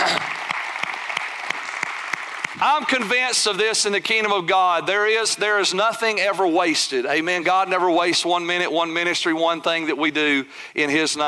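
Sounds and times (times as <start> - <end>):
church congregation applauding: 0.0 - 3.4
speech: 2.6 - 11.2.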